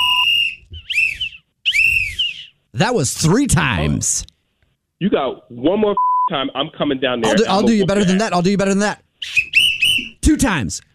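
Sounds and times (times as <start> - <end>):
shrill whistle blasts: 0.0 - 2.6, 9.2 - 10.2
speech: 2.8 - 4.3, 5.0 - 9.0, 10.4 - 10.9.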